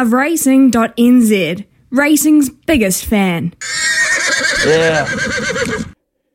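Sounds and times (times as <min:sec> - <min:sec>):
speech: 0:00.0 - 0:03.8, 0:04.6 - 0:05.8
horse neighing: 0:03.6 - 0:06.0.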